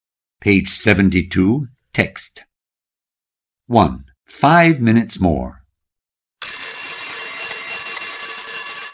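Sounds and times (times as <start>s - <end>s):
speech: 0.4s - 2.5s, 3.7s - 5.6s
alarm clock ringing: 6.4s - 8.9s.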